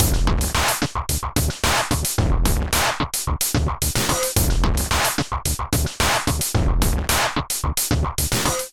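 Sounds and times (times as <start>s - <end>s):
drum kit groove at 110 bpm: 0.0s - 8.7s.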